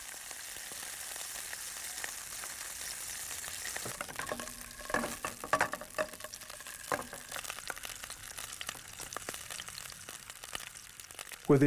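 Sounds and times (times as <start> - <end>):
sausages and onions sizzling in a pan: 0.0 - 11.6
stirring clatter: 3.8 - 7.3.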